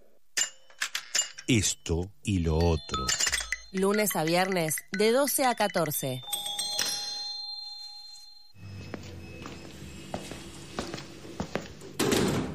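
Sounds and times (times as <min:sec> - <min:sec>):
speech: 0:01.5 - 0:06.3
doorbell chiming: 0:02.5 - 0:04.9, 0:05.5 - 0:09.6
soft footsteps indoors: 0:08.8 - 0:11.9.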